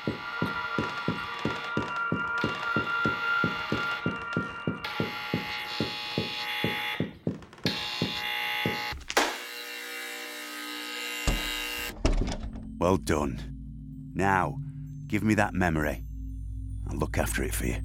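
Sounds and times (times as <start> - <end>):
loud electronic buzzer: 0.0 - 11.9
speech: 12.8 - 13.5, 14.2 - 16.1, 16.9 - 17.8.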